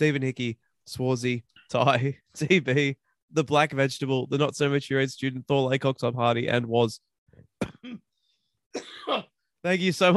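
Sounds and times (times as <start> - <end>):
speech: 0.0 - 8.0, 8.7 - 10.1
person coughing: 7.6 - 8.1, 8.8 - 9.3.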